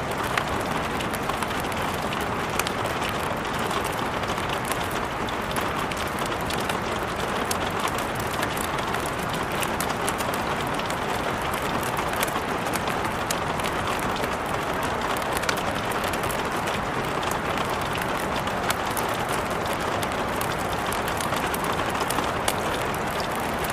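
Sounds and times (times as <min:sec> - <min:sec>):
rainstorm pouring: 0:00.0 - 0:23.7.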